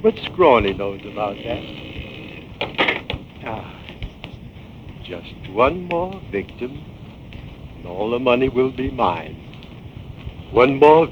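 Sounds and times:
speech: 0.0s - 1.9s, 3.4s - 3.8s, 5.1s - 6.9s, 7.8s - 9.4s, 10.5s - 11.0s
wooden trap door creaking and clunking: 0.2s - 3.6s
wooden knocks and scrapes: 0.2s - 7.8s.

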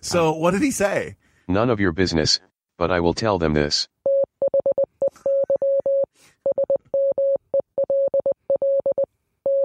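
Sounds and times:
speech: 0.0s - 3.9s
Morse code beeps: 4.0s - 9.6s.

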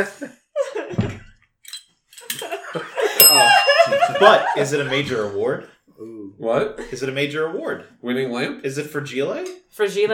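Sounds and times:
speech: 0.0s - 1.2s, 2.3s - 10.1s
small group laughing: 2.4s - 5.3s
bright bell ringing: 3.2s - 4.4s.

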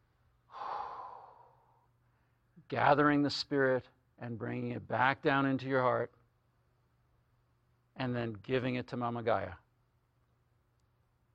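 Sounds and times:
soft airy breath during a guided meditation: 0.5s - 2.5s
speech: 2.7s - 6.2s, 8.0s - 9.6s.

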